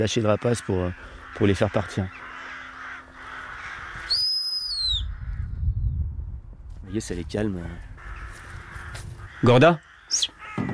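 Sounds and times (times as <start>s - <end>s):
speech: 0.0s - 2.2s, 6.9s - 7.9s, 9.4s - 10.7s
low rumbling outdoor noise: 0.0s - 10.7s
loud sustained human whistle used to scare birds: 4.1s - 5.0s.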